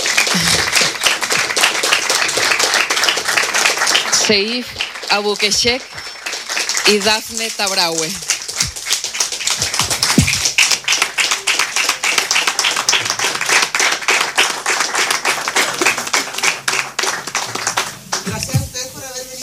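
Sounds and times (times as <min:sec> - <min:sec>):
audience applause rising to its feet in a hall at a live event: 0:00.0 - 0:18.5
speech: 0:00.4 - 0:00.8, 0:04.3 - 0:06.1, 0:06.8 - 0:08.3.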